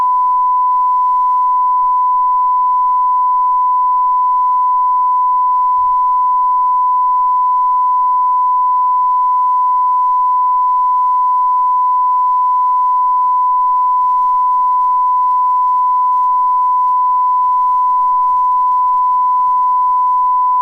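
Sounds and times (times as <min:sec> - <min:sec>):
94 dB calibration tone: 0:00.0 - 0:20.5.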